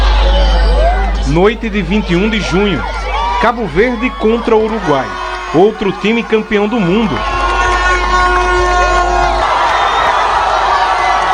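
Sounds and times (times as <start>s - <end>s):
huge stadium crowd cheering a World Cup goal: 0.0s - 11.3s
laughter: 0.0s - 11.3s
speech: 1.3s - 7.3s.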